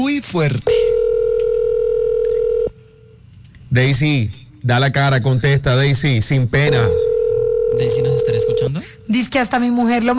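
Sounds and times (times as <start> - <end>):
speech: 0.2 - 0.8, 3.7 - 7.0, 7.7 - 10.1
faint low hum: 0.4 - 10.1
steady electronic telephone tone on an unanswered call: 0.7 - 3.1, 6.7 - 9.0.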